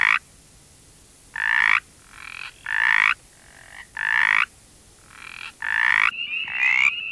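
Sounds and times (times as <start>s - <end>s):
mountain chorus frogs giving raspy pulsed croaks: 0.0s - 0.2s, 1.3s - 7.1s.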